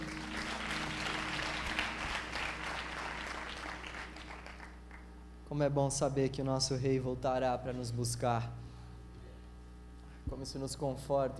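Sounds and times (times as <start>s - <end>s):
audience applauding: 0.0s - 5.1s
faint low hum: 0.0s - 11.3s
speech: 5.5s - 8.6s, 10.3s - 11.3s.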